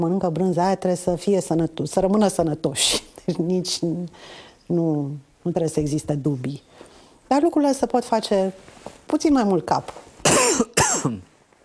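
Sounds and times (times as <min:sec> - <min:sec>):
speech: 0:00.0 - 0:06.7, 0:07.3 - 0:11.3
faint breathy sounds: 0:04.1 - 0:04.7
harsh coughs: 0:10.2 - 0:11.3.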